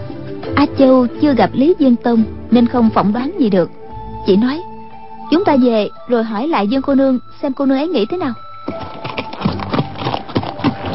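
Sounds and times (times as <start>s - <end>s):
speech: 0.6s - 4.7s, 5.3s - 8.8s
horse galloping hooves: 8.2s - 10.9s.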